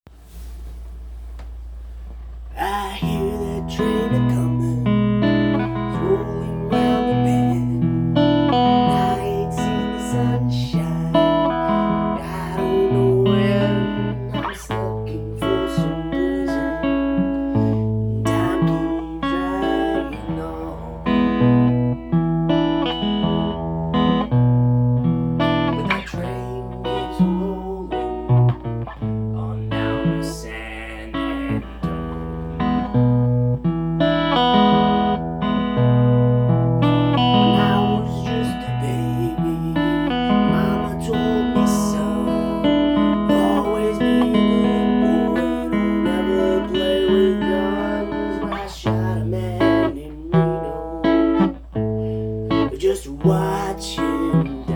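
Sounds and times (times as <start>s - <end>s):
guitar: 0.1s - 54.7s
voice: 2.5s - 4.9s, 5.6s - 7.9s, 8.8s - 16.9s, 18.3s - 21.6s, 25.8s - 28.5s, 29.3s - 32.4s, 37.4s - 51.0s, 52.7s - 54.7s.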